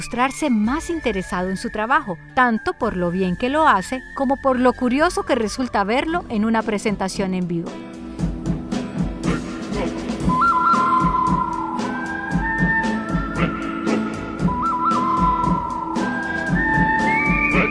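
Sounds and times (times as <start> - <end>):
whistled melody with sliding pitches: 0.0 - 6.5, 8.6 - 17.7
speech: 0.0 - 7.9
rhythmic backing music with steady percussion: 7.2 - 17.7.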